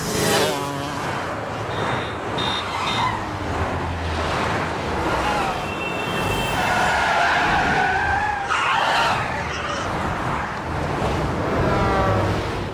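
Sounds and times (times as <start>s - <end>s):
passing highway traffic roar: 0.0s - 12.7s
cars braking hard on a highway: 1.6s - 12.7s
car tires screeching in skids on a highway: 1.8s - 12.5s.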